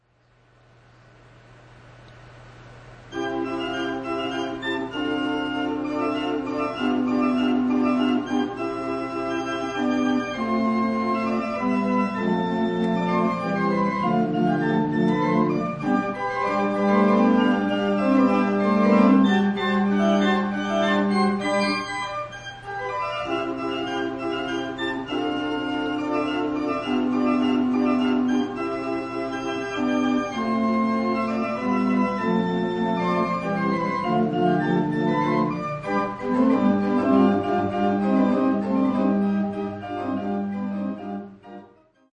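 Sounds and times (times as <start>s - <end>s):
organ prelude in classic style: 3.1s - 42.1s.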